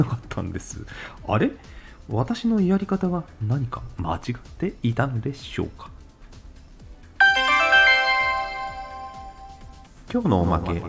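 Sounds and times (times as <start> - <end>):
speech: 0.0 - 6.0, 10.1 - 10.8
bright melodic phone ringtone for an incoming call: 7.2 - 9.8.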